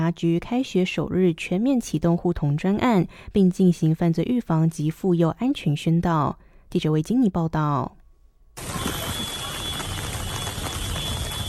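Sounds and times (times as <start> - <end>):
speech: 0.0 - 8.0
steady rain spattering on surfaces: 8.6 - 11.4.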